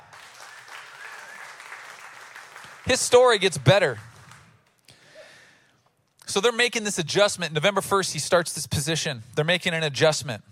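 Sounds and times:
audience clapping: 0.0s - 4.8s
speech: 2.8s - 4.1s, 6.3s - 10.5s.

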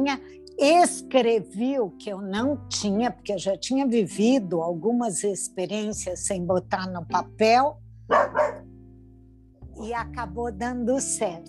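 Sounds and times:
speech: 0.0s - 8.6s, 9.8s - 11.4s
female dog barking: 8.1s - 8.6s.

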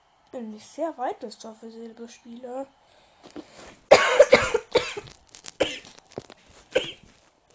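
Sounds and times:
speech: 0.3s - 4.5s
person with a slight cold coughing harshly: 3.9s - 5.8s, 6.7s - 7.1s.

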